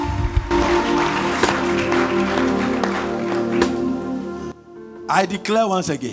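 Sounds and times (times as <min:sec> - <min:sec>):
audience clapping: 0:00.0 - 0:04.5
speech: 0:05.1 - 0:06.1.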